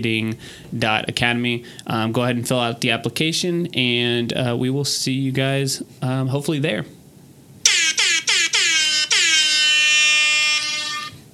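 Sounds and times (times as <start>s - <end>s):
speech: 0.0s - 7.0s
loud air horn blasts: 7.7s - 11.3s.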